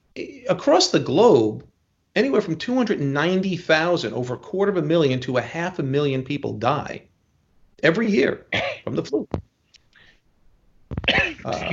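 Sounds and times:
speech: 0.2s - 7.1s, 7.8s - 9.5s, 11.1s - 11.7s
short dry cough: 8.5s - 9.1s, 11.0s - 11.7s.

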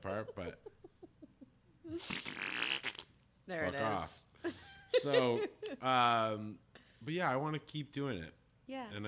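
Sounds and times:
speech: 0.0s - 0.7s, 5.0s - 9.0s
raspy fart: 2.0s - 3.2s.

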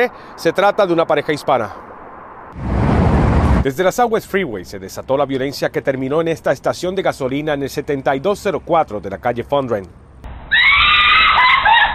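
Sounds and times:
speech: 0.0s - 1.8s, 2.5s - 2.8s, 3.6s - 10.0s
woman screaming desperately: 10.5s - 11.9s.

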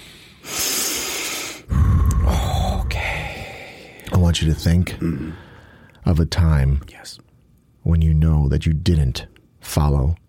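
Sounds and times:
deep breath during a guided relaxation exercise: 0.0s - 4.0s, 5.1s - 6.0s
speech: 4.4s - 10.2s.

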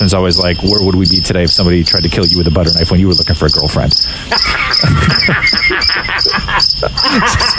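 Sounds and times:
low sound: 0.0s - 4.0s
cricket chirping: 0.0s - 7.5s
speech: 0.0s - 7.5s
laughter: 4.2s - 7.5s.

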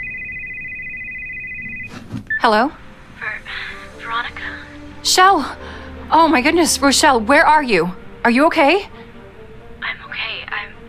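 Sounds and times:
mobile phone ringing with a high electronic tone: 0.0s - 2.7s
speech: 2.4s - 2.8s, 3.5s - 9.0s.

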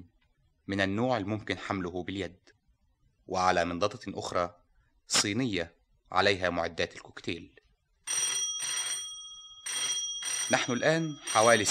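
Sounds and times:
speech: 0.7s - 2.6s, 3.3s - 8.4s, 10.5s - 11.6s
old-style telephone bell ringing: 8.0s - 11.6s.

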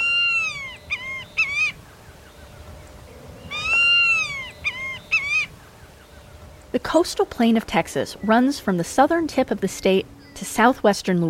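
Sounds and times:
white-tailed hawk giving laughing whinny-like calls: 0.0s - 6.7s
speech: 6.8s - 11.2s.

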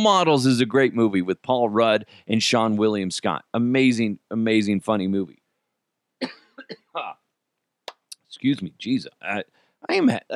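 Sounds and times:
speech: 0.0s - 5.4s, 6.2s - 7.2s, 8.4s - 10.3s
person coughing harshly: 6.2s - 7.2s.

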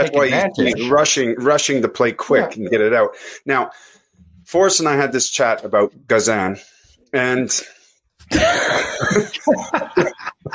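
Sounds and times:
speech: 0.0s - 3.9s, 4.5s - 10.5s
person coughing and clearing the throat: 8.3s - 9.3s
laughter: 8.3s - 10.5s.

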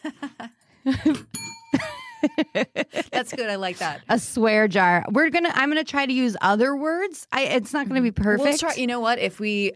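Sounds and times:
voices and laughter: 0.0s - 4.2s
small bell ringing: 1.3s - 2.6s
speech: 3.3s - 9.7s.

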